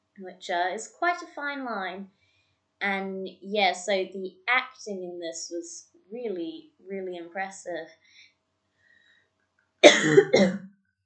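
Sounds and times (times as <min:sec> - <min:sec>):
speech: 0:00.2 - 0:02.2, 0:02.8 - 0:08.3, 0:09.8 - 0:10.7
short dry cough from a dry throat: 0:09.8 - 0:10.7.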